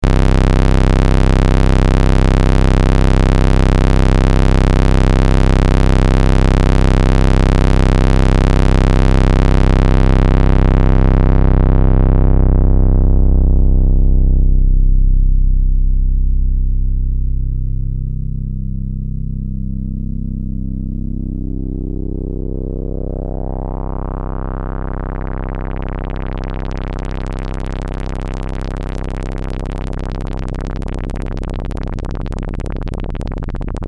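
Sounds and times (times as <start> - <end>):
Doepfer MS-404 synthesizer with PWM and filter LFO modulation: 0.0 - 33.8.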